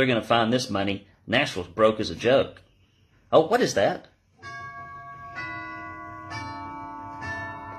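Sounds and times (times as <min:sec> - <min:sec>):
speech: 0:00.0 - 0:02.6, 0:03.3 - 0:04.6
grandfather clock chiming resonant bell strokes: 0:04.4 - 0:07.7.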